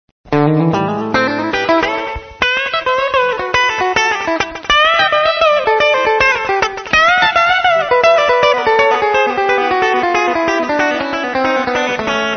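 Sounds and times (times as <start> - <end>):
country guitar chop: 0.3 - 12.3.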